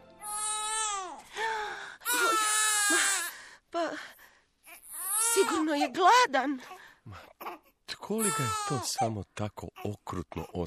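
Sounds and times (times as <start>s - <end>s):
baby crying: 0.2s - 1.2s, 2.0s - 3.3s, 4.6s - 6.0s, 7.4s - 9.1s
speech: 5.5s - 7.2s, 8.1s - 10.6s.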